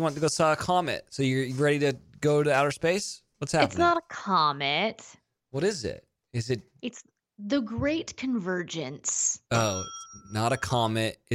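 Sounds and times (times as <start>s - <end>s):
speech: 0.0s - 11.3s
newly bought desk bell ringing: 9.5s - 11.0s.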